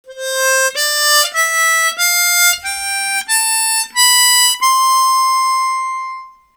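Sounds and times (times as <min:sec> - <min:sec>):
minor harmonica: 0:00.0 - 0:06.5.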